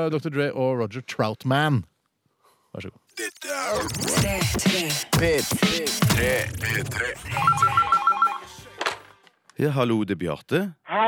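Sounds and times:
speech: 0.0s - 1.9s, 2.8s - 7.9s, 9.6s - 11.0s
telephone ringing for an incoming call: 7.3s - 8.7s.

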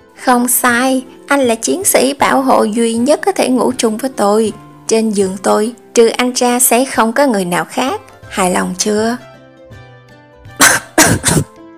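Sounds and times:
speech: 0.3s - 9.3s
person coughing after choking on saliva: 10.6s - 11.5s.

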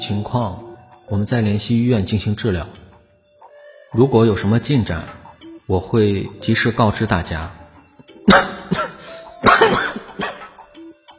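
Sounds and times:
speech: 0.0s - 2.9s, 3.9s - 7.6s, 8.3s - 8.8s
sickly man coughing harshly while pressing his chest: 8.2s - 10.6s.

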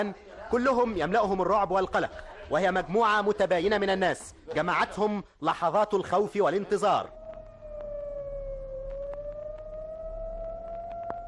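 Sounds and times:
speech: 0.0s - 7.2s
fire engine siren on a Cairo street: 7.0s - 11.2s
faint clicks: 7.1s - 11.2s.

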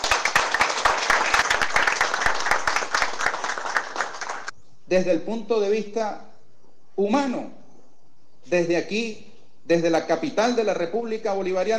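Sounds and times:
audience applause at a speech in the capital of Venezuela: 0.0s - 4.5s
speech: 4.9s - 6.3s, 7.0s - 7.6s, 8.4s - 11.7s.

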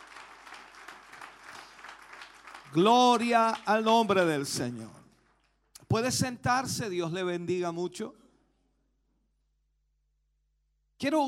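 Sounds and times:
congregation applauding at a church celebration service: 0.0s - 4.6s
speech: 2.7s - 5.0s, 5.9s - 8.2s, 11.0s - 11.2s.

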